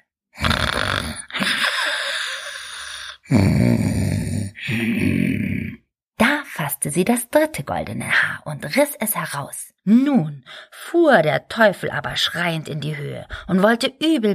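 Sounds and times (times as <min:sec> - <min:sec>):
person imitating a man's heavy snoring: 0:00.3 - 0:05.9
speech: 0:03.3 - 0:03.9, 0:06.9 - 0:14.3.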